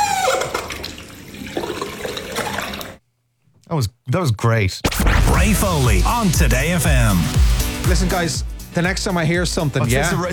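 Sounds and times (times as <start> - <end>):
squeaky bathroom tap squealing as it turns: 0.0 - 0.8
speech: 3.7 - 10.3.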